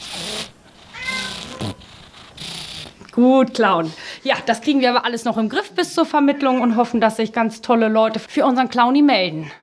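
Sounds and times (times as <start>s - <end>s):
congested cat with cat flu snuffling and wheezing at an animal shelter: 0.0s - 3.1s
speech: 3.2s - 9.6s.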